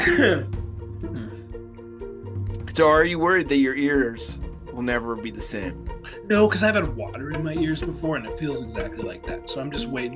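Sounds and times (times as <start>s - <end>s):
person coughing: 0.0s - 0.5s
voiced throat sounds: 0.0s - 1.5s
speech: 0.1s - 1.2s, 2.8s - 10.1s.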